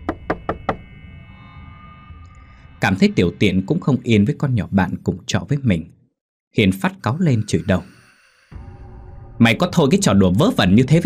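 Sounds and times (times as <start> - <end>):
heavy knocking on a toilet door: 0.0 - 0.8
speech: 2.8 - 8.6, 9.4 - 11.0.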